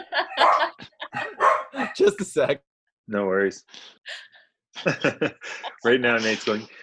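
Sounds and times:
laughter: 0.0 - 2.2, 4.8 - 6.3
two dogs barking: 0.2 - 1.9
speech: 2.0 - 6.8.

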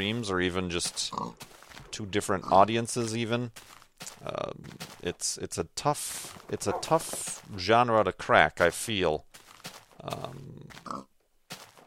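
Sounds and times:
speech: 0.0 - 9.3, 10.0 - 11.1
pig grunting in a video game: 1.0 - 1.4, 6.4 - 7.3, 10.0 - 11.1.

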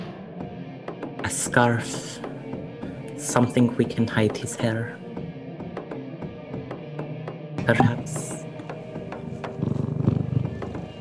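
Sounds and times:
speech: 1.2 - 2.3, 3.2 - 5.0, 7.7 - 8.4
male cat purring: 7.7 - 11.0.

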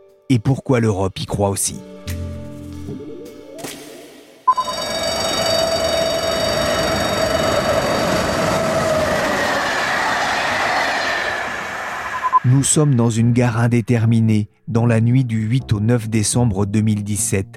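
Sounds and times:
speech: 0.3 - 2.0, 12.4 - 17.5
high squealing tone: 4.5 - 12.8
night train passing through a station: 4.7 - 13.3
heavy rumble of train wheels and cars: 6.2 - 11.8.

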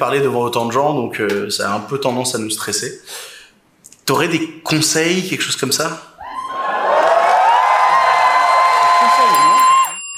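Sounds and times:
speech: 0.0 - 3.3, 4.1 - 6.1
crowd shouting and cheering: 6.2 - 10.0
whoops: 6.2 - 10.0.

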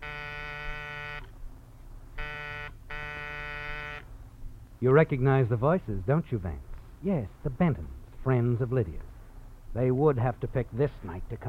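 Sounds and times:
harsh electric front door buzzer: 0.0 - 1.3, 2.2 - 4.0
speech: 4.8 - 9.1, 9.7 - 11.4.

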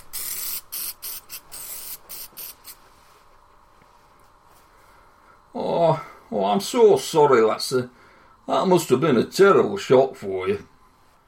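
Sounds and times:
aerosol can spraying onto a man: 0.0 - 2.8
speech: 5.5 - 10.7.

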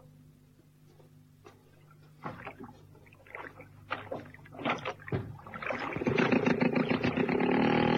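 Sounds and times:
splashing water from a rowing boat pulling through a lake: 1.7 - 7.8
hollow wooden knocks and clunks: 4.0 - 7.2.

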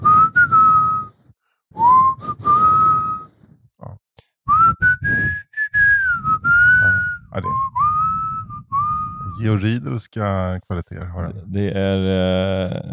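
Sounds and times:
person whistling a slow rock ballad melody: 0.0 - 1.2, 1.8 - 3.3, 4.5 - 9.4
speech: 9.4 - 12.9.

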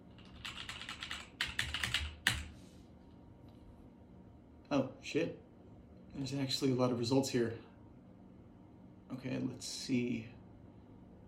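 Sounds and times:
computer keyboard typing: 0.2 - 2.5
speech: 4.7 - 5.4, 6.2 - 7.7, 9.1 - 10.4.

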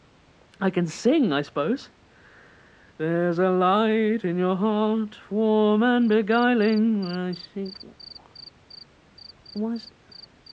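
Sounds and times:
speech: 0.6 - 2.0, 3.0 - 8.0, 9.6 - 10.0
cricket chirping in high-pitched bursts: 6.0 - 10.5.

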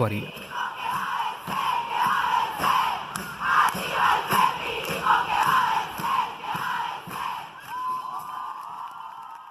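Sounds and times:
speech: 0.0 - 0.5
large protest crowd chanting in unison in Buenos Aires Argentina: 0.3 - 7.7.

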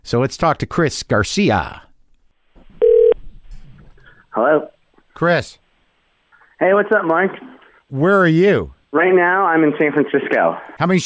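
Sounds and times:
speech: 0.1 - 1.9, 4.4 - 5.6, 6.6 - 11.0
electronic telephone tone as a phone call is dialed: 2.8 - 3.2.

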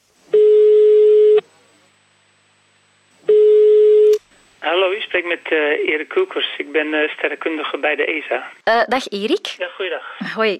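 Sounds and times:
telephone ringback tone: 0.4 - 1.4, 3.3 - 4.2
speech: 5.2 - 10.5.

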